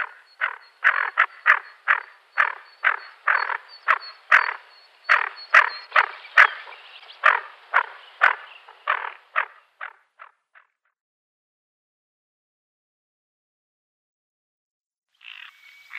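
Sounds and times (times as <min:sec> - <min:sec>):
female greater scaup rasping calls: 0:00.0 - 0:10.3.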